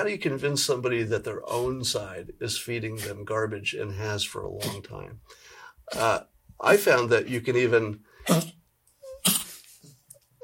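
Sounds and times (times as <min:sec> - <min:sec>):
speech: 0:00.0 - 0:08.6
dog coughing: 0:08.2 - 0:08.6, 0:09.2 - 0:09.6.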